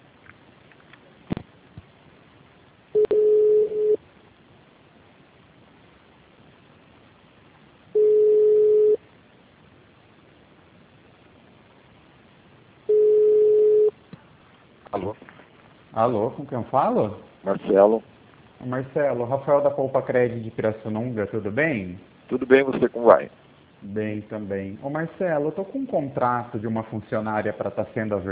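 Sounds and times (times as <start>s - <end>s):
faint hiss: 0.0s - 28.2s
mid-pitched telephone line tone while a call is transferred: 3.0s - 4.0s, 7.9s - 9.0s, 12.9s - 14.0s
speech: 16.0s - 28.2s.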